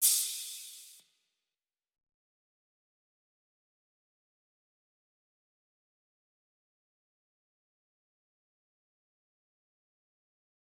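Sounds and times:
94 bpm G minor melodic music with crash cymbal: 0.0 - 1.0.

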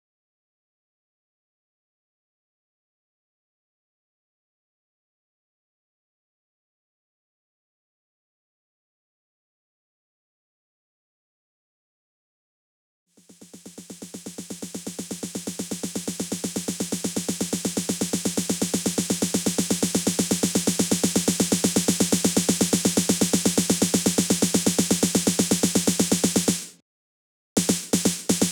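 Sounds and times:
snare drum roll: 13.4 - 26.8, 27.6 - 28.5.

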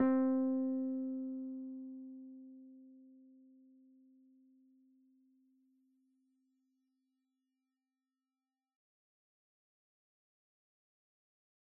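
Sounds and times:
electric keyboard: 0.0 - 1.8.

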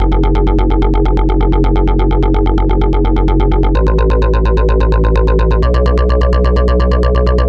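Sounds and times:
bass loop in F: 0.0 - 7.4.

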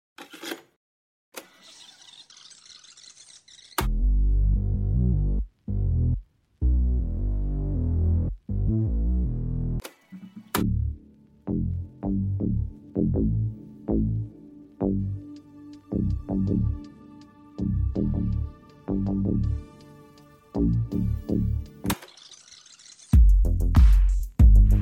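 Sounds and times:
bass tapes: 3.8 - 9.8, 10.5 - 16.9, 17.6 - 19.8, 20.5 - 21.9, 23.2 - 24.7.

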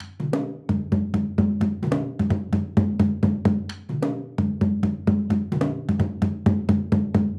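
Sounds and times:
dundun drum percussion loop: 0.0 - 7.3.

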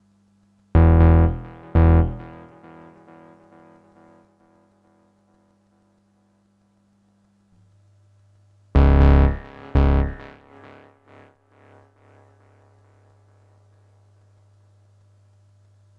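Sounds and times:
cinematic bass loop in E minor: 0.8 - 2.4, 8.8 - 10.4.

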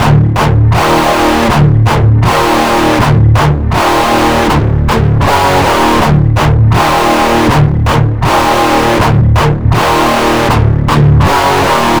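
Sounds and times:
amateur metal guitar loop in D minor: 0.0 - 11.9.

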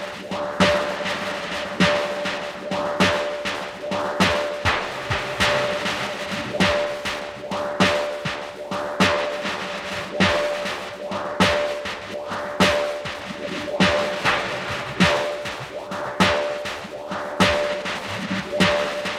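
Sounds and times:
100 BPM snare drum pattern in D minor: 0.0 - 19.1.

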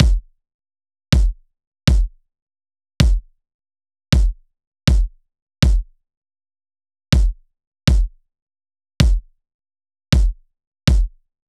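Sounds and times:
kick drum loop in D minor: 0.0 - 0.3, 1.2 - 2.2, 3.0 - 3.3, 4.2 - 5.9, 7.2 - 8.2, 9.0 - 9.3, 10.2 - 11.2.

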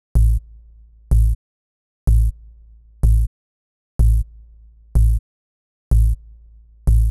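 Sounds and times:
bass at 125 bpm: 0.0 - 0.5, 1.1 - 1.4, 2.1 - 2.4, 3.0 - 3.3, 4.0 - 4.3, 5.0 - 5.2, 5.9 - 6.2, 6.9 - 7.0.

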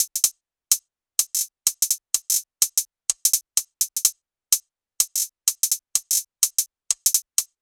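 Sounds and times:
top drum loop: 0.0 - 0.3, 1.2 - 7.5.

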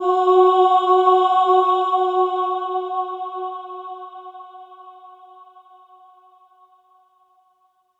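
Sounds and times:
choir singing F3: 0.0 - 5.9.

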